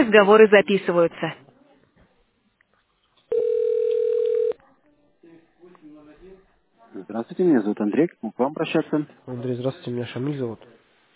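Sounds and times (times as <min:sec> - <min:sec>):
speech: 0:00.0 - 0:01.4, 0:07.0 - 0:10.8
steady telephone line tone while a call to a bank connects to an operator: 0:03.3 - 0:04.6.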